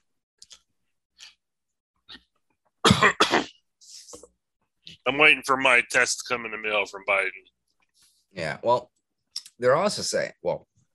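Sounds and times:
person coughing: 2.8 - 3.6
speech: 5.1 - 7.6, 8.3 - 8.9, 9.6 - 10.7.

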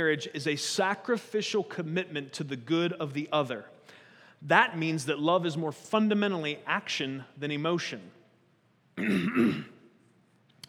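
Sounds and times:
speech: 0.0 - 3.8, 4.4 - 8.2, 9.0 - 9.7
harsh throat clearing: 9.0 - 9.8.

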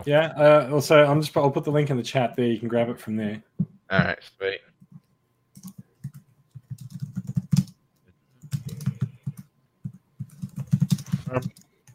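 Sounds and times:
speech: 0.0 - 4.7, 11.3 - 11.6
rapid computer keyboard typing: 4.9 - 7.8, 8.4 - 11.9.

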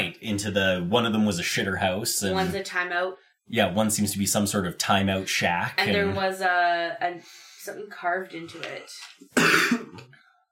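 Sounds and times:
speech: 0.3 - 10.2
person coughing: 9.4 - 10.1
throat clearing: 9.4 - 10.1.

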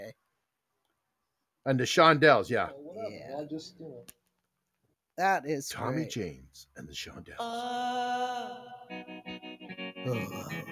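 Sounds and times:
speech: 1.6 - 4.2, 5.2 - 9.2, 10.0 - 10.7
electric guitar with heavy reverb: 8.1 - 10.7.

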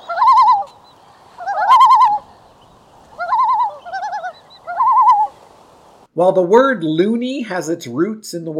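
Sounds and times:
common loon tremolo call: 0.0 - 0.7, 1.4 - 2.3, 3.2 - 5.4
speech: 6.2 - 8.5.

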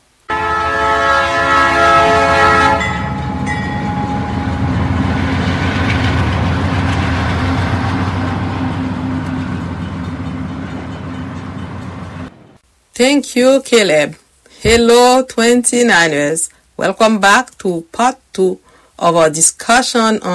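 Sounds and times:
loud steam train whistle: 0.3 - 5.0
steam train chugging rumble rolling along: 1.0 - 12.6
speech: 13.0 - 20.3.

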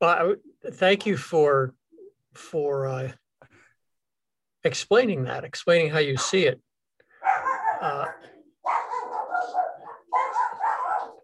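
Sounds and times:
speech: 0.0 - 1.8, 2.4 - 3.2, 4.6 - 6.7, 7.8 - 8.3
dogs barking and baying: 7.1 - 11.2.

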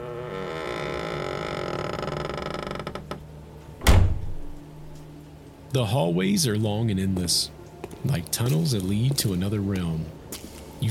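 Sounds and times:
door in an old state hospital building creaking shut: 0.0 - 4.9
heavy door closing thud: 3.8 - 4.6
speech: 5.7 - 10.2.

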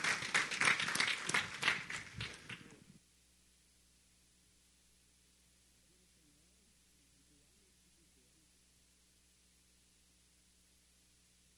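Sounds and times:
audience applauding: 0.0 - 2.8.

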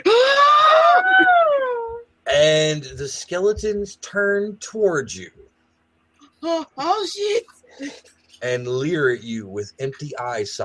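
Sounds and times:
person imitating a high-pitched shriek: 0.0 - 2.4
speech: 2.4 - 5.4, 6.4 - 10.6.

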